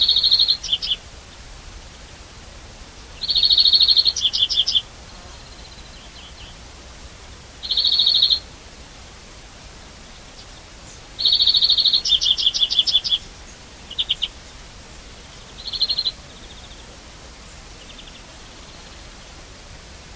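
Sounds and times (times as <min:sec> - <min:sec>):
European greenfinch giving fast buzzy trills and chirping note series: 0:00.0 - 0:01.5, 0:02.9 - 0:09.1, 0:10.0 - 0:19.4
faint hiss: 0:00.0 - 0:20.1.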